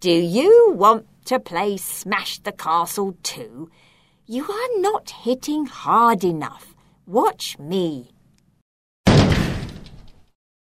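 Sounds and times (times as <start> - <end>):
speech: 0.0 - 8.2
heavy door kicked open: 9.0 - 10.3.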